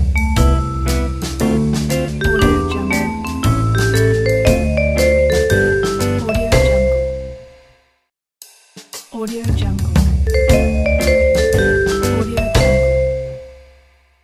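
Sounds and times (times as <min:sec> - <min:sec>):
vibraphone logo jingle: 0:00.2 - 0:07.4, 0:10.3 - 0:13.7.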